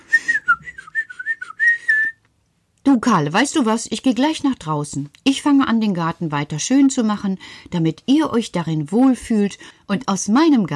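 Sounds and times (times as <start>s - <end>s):
person whistling a short lilting tune: 0.0s - 2.2s
speech: 2.9s - 10.7s.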